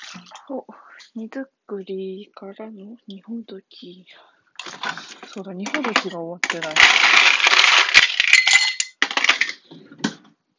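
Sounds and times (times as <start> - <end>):
speech: 0.5 - 4.3, 5.3 - 7.4
ice cubes clattering into a glass: 4.6 - 9.6.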